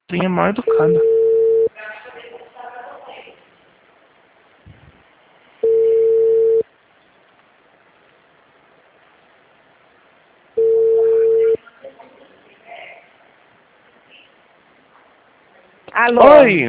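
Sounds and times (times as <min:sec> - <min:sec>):
speech: 0:00.1 - 0:01.1, 0:16.1 - 0:16.6
busy-signal tones on a telephone line after a dropped call: 0:00.7 - 0:01.7, 0:05.6 - 0:06.6, 0:10.6 - 0:11.6.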